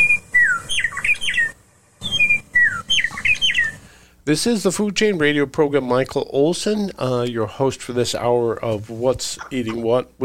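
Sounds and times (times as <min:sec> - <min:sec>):
meadowlark singing: 0:00.0 - 0:03.8
speech: 0:04.3 - 0:10.2.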